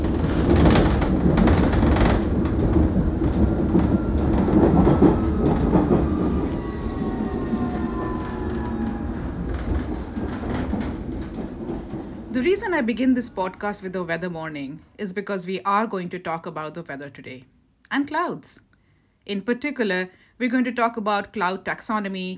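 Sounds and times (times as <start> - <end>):
train rumbling at a station platform on the way to Plaistow in East London: 0.0 - 15.0
speech: 12.7 - 22.3.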